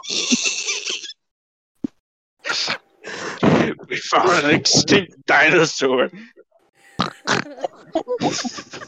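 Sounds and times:
laughter: 0.0 - 1.1, 2.4 - 5.2, 7.0 - 8.8
speech: 3.8 - 6.4, 7.4 - 8.8
person imitating pig oinks with snorts and grunts: 7.0 - 7.8.

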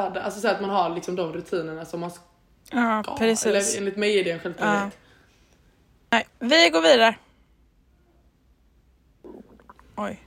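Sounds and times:
speech: 0.0 - 5.0, 6.1 - 7.2, 10.0 - 10.2
stomach rumbling and gurgling: 9.2 - 10.2.

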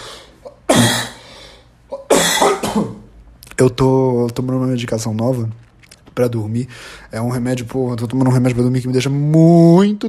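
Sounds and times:
person coughing harshly: 0.4 - 1.3, 1.9 - 3.1
speech: 2.8 - 3.0, 3.6 - 10.0.

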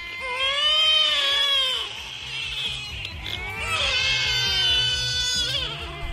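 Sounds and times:
many babies screaming at once: 0.0 - 6.1.

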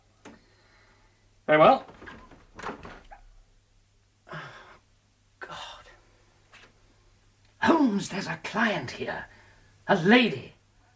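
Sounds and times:
speech: 1.5 - 1.9, 8.0 - 10.6
door opening with rough swishes and scrapes: 1.7 - 3.4.

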